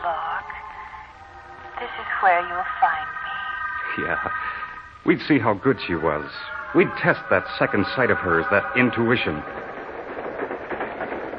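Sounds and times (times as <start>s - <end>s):
moving train rumbling: 0.0s - 11.3s
speech: 1.8s - 3.2s, 3.9s - 9.7s
train wheels clacking over rail joints: 5.2s - 11.3s.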